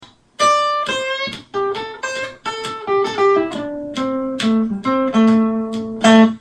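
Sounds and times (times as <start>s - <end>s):
pentatonic riff: 0.4s - 6.4s.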